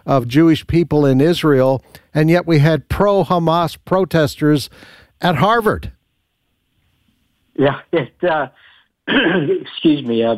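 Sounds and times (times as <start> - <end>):
speech: 0.1 - 6.0, 7.6 - 10.3
throat clearing: 9.1 - 9.6.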